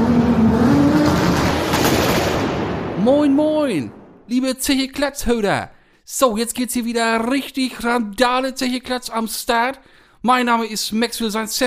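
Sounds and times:
car engine starting with the ignition and revving: 0.0s - 3.0s
speech: 3.7s - 11.6s.

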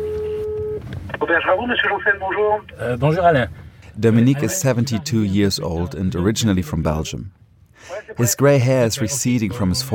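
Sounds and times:
steady electronic phone tone of a call being placed: 0.0s - 0.8s
speech: 1.2s - 9.9s.

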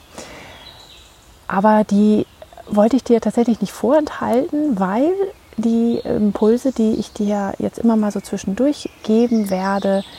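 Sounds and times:
faint birds chirping in a forest: 0.0s - 10.1s
speech: 1.5s - 10.1s.

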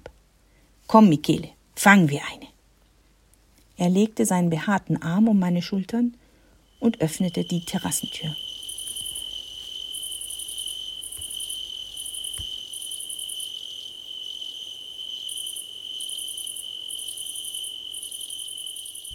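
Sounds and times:
speech: 0.9s - 2.5s, 3.8s - 6.2s, 6.8s - 8.4s
crickets chirping in high pulsing bursts over a shrill trill: 6.2s - 19.1s.

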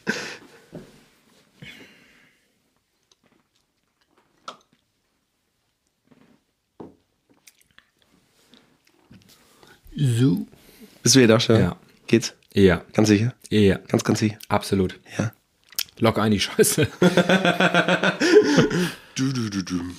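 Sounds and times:
speech: 10.0s - 10.5s, 11.1s - 15.4s, 16.0s - 19.9s
laughter: 16.6s - 19.9s
man coughing: 18.2s - 19.6s.

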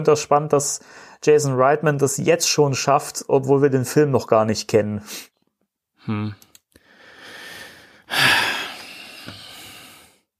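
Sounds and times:
speech: 0.0s - 5.3s, 6.0s - 6.5s
person breathing heavily out of disappointment: 0.8s - 1.2s, 6.8s - 10.3s.

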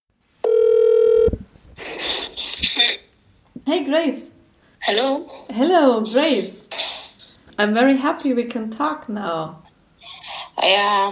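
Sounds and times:
loud steady electronic phone tone: 0.4s - 1.4s
speech: 3.7s - 6.6s, 7.6s - 9.6s, 10.6s - 11.1s.

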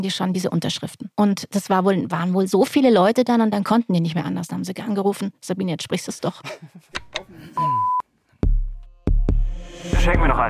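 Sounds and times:
speech: 0.0s - 8.0s, 9.8s - 10.4s
short electronic alarm beep: 7.6s - 8.0s.

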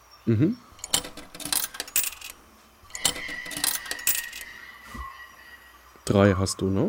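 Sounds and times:
speech: 0.2s - 0.7s, 6.1s - 6.8s
metal tokens dropping into the coin slot of a machine: 0.8s - 4.6s.

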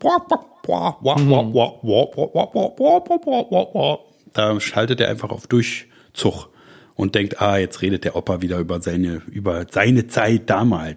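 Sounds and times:
person vocally mimicking muffled wordless adult chatter with nasal wah-wah syllables: 0.0s - 4.0s
speech: 0.0s - 10.9s.

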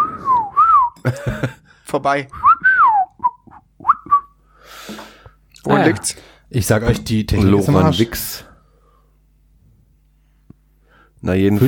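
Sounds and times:
whistling into a microphone: 0.0s - 1.0s, 2.3s - 4.4s
speech: 1.0s - 2.4s, 5.6s - 8.5s, 11.2s - 11.6s.

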